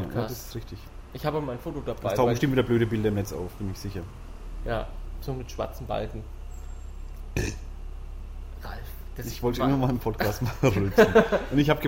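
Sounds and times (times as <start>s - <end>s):
speech: 0.2s - 6.4s, 7.4s - 7.6s, 9.2s - 11.8s
burp: 7.3s - 7.7s
laughter: 10.2s - 11.8s.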